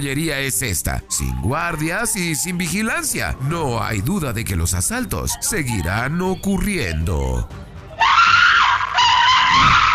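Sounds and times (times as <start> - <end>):
speech: 0.0 - 7.7
woman screaming for help: 8.0 - 9.9.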